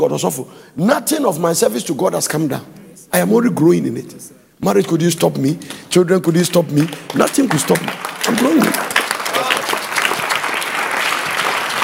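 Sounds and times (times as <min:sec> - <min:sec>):
speech: 0:00.0 - 0:08.9
crowd clapping and applauding: 0:06.4 - 0:11.8.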